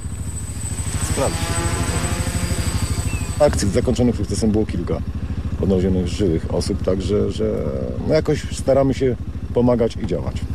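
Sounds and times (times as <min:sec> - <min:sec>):
search drone propellers buzzing over open terrain: 0:00.0 - 0:08.2
thin high whine of a search drone: 0:00.0 - 0:08.7
speech: 0:01.2 - 0:01.8, 0:03.4 - 0:10.5.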